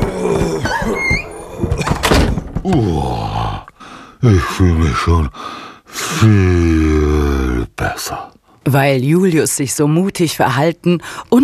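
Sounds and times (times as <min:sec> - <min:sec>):
door hinge creaking: 0:00.0 - 0:02.9
soft thumps and rattles: 0:01.6 - 0:02.9
speech: 0:02.7 - 0:03.1, 0:04.2 - 0:11.4.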